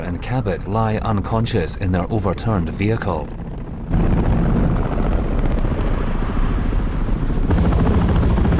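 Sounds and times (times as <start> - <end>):
military helicopter rotors thumping with heavy low roar: 0.0 - 8.5
speech: 0.1 - 4.2.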